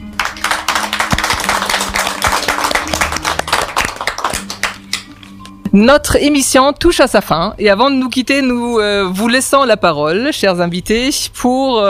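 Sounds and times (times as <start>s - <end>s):
crowd applauding: 0.0s - 5.2s
speech: 5.7s - 11.8s.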